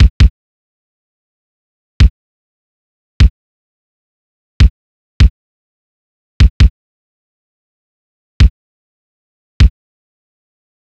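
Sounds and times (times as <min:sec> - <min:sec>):
nostalgia kick drum loop: 0:00.0 - 0:00.3, 0:06.4 - 0:06.6.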